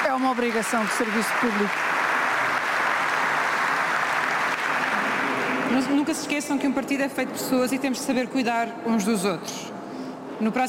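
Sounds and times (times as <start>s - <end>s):
large crowd applauding: 0.0s - 6.3s
speech: 0.2s - 2.0s, 5.7s - 9.8s, 10.4s - 10.6s.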